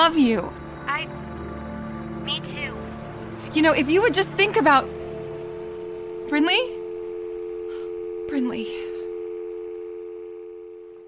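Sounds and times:
speech: 0.1s - 0.6s, 2.3s - 2.9s, 3.5s - 5.0s, 6.3s - 6.8s, 8.3s - 8.8s
steady telephone dial tone after hang-up: 5.7s - 11.0s.

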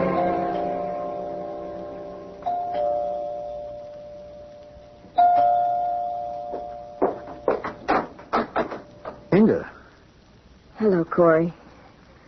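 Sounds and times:
doorbell chiming: 0.2s - 4.6s, 5.2s - 7.6s
speech: 9.4s - 9.7s, 10.8s - 11.6s.

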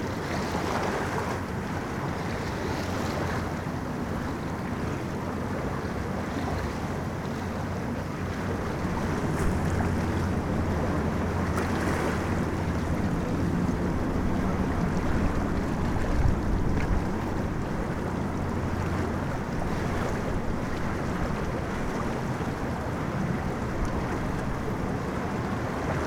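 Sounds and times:
dense low rumbling wash of moving water on a riverbank: 0.0s - 26.0s
low engine-like hum: 0.0s - 26.0s
wind on a riverbank: 0.0s - 26.0s.

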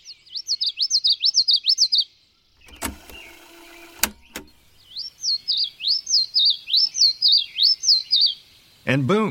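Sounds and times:
high-pitched bird song: 0.0s - 8.5s
mechanical whirring: 2.6s - 4.8s
sharp clicks: 2.6s - 4.8s.

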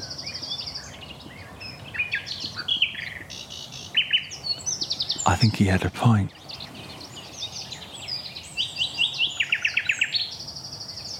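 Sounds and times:
Common Nightingale singing on a common with woodland in Dorset: 0.0s - 11.1s
faint background hiss: 5.0s - 9.3s
speech: 5.3s - 6.4s.

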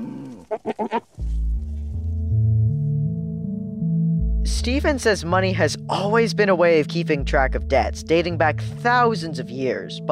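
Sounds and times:
goat bleating: 0.0s - 1.2s
speech: 0.5s - 1.4s, 4.6s - 10.1s
steady low droning tone shifting pitch in steps: 1.2s - 5.9s.

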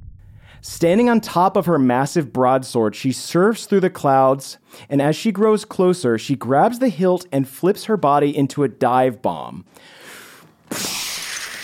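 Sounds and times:
speech: 0.6s - 10.1s, 10.7s - 11.0s
glass shards raining down: 10.7s - 11.6s
skylight glass shattering: 10.7s - 11.6s.

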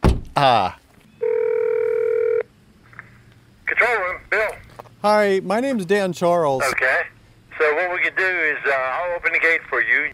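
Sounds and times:
thump: 0.0s - 0.4s
speech: 0.4s - 0.8s, 3.9s - 10.1s
steady buzzy telephone tone: 1.2s - 2.5s.

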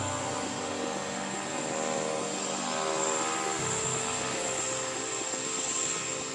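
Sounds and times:
sharp high-pitched turbine whine: 0.0s - 6.3s
turboprop airplane engine running: 0.0s - 6.3s.

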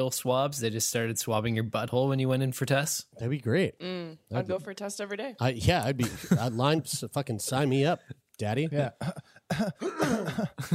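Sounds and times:
speech: 0.0s - 10.7s
harsh voiced coughs: 8.9s - 10.7s
throat clearing: 9.0s - 10.7s.

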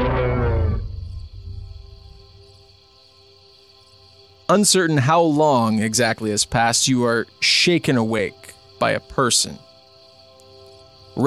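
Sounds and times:
deep roar of a huge furry beast: 0.0s - 1.5s
speech: 4.5s - 9.7s.

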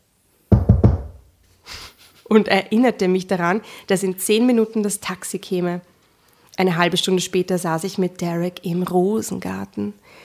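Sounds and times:
man knocking on a door: 0.5s - 1.3s
speech: 2.3s - 5.9s, 6.6s - 10.2s.

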